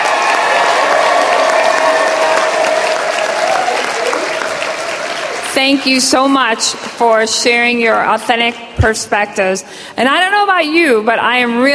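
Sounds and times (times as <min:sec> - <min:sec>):
audience applause: 0:00.0 - 0:06.0
speech: 0:05.6 - 0:11.7.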